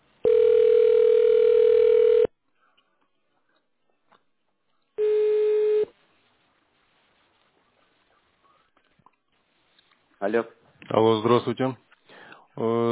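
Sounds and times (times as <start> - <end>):
telephone line tone while a call is transferred to an agent: 0.2 - 2.3, 5.0 - 5.9
speech: 10.3 - 11.8, 12.6 - 12.9.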